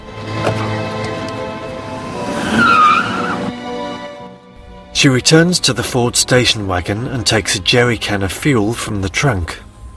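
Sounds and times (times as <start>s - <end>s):
car engine starting and revving at a gas station: 0.2s - 3.8s
car tires squealing: 1.8s - 3.6s
speech: 5.0s - 9.7s.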